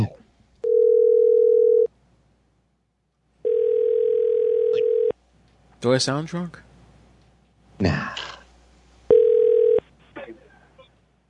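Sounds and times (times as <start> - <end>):
telephone dial tone after a customer service call is hung up: 0.6 - 1.9, 3.5 - 5.1, 9.1 - 9.8
speech: 5.8 - 6.7.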